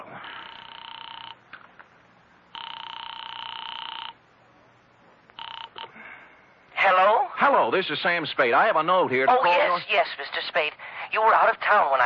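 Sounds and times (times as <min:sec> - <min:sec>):
telephone line ringing through an operator to North Tacoloma California: 0:00.2 - 0:01.7, 0:02.4 - 0:04.3, 0:05.3 - 0:06.0
speech: 0:07.4 - 0:12.0.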